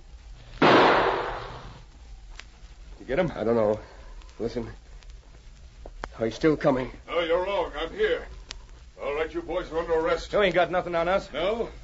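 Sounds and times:
gunshot fired at an approaching man: 0:00.6 - 0:01.8
speech: 0:03.1 - 0:04.8, 0:06.2 - 0:08.4, 0:09.3 - 0:11.8.

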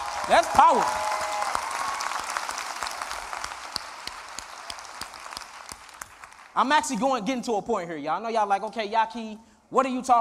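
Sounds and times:
crowd clapping: 0:00.0 - 0:07.0
speech: 0:00.3 - 0:01.0, 0:06.6 - 0:10.1.

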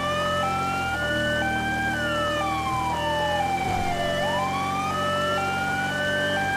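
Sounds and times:
police Charger car engine roaring: 0:00.0 - 0:06.5
police car siren wailing: 0:00.0 - 0:06.5.

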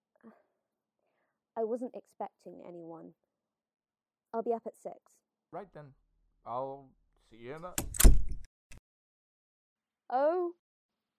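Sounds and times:
speech: 0:01.6 - 0:03.4, 0:04.3 - 0:08.0, 0:10.1 - 0:10.6
door slamming shut with a heavy thud: 0:07.6 - 0:08.5.

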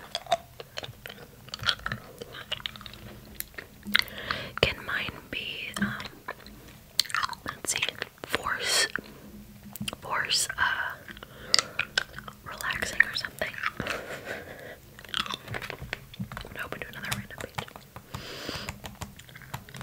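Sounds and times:
hard candy being sucked and clicked against teeth: 0:00.0 - 0:04.8, 0:05.5 - 0:09.0, 0:09.8 - 0:19.8.

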